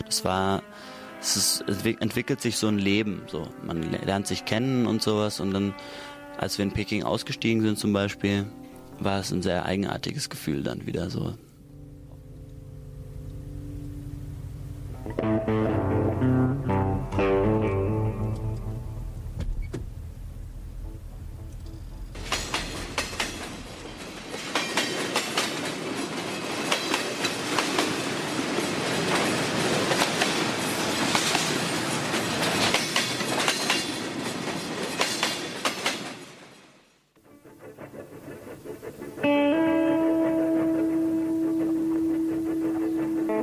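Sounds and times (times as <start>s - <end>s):
speech: 0.1s - 11.5s, 15.1s - 15.9s
steady tonal hum: 11.1s - 24.4s, 37.3s - 43.4s
long-distance train wheels clickety-clack on rail joints: 22.1s - 43.4s.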